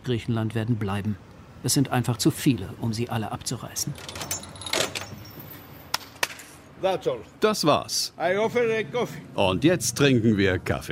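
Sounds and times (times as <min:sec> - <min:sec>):
speech: 0:00.1 - 0:04.3, 0:06.8 - 0:10.9
metal keys rattling in a storehouse door lock: 0:03.9 - 0:05.7.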